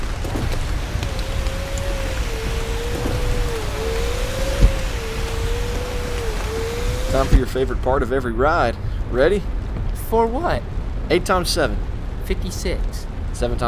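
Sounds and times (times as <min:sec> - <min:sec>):
low car engine rumble: 0:00.0 - 0:07.8
rain pattering on a car's roof and windows: 0:00.0 - 0:13.6
speech: 0:07.2 - 0:13.6.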